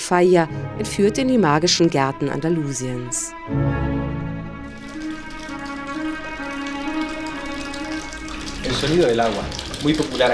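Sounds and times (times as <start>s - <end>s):
speech: 0.1s - 3.9s, 8.8s - 10.3s
water flowing in a garden: 4.4s - 10.3s.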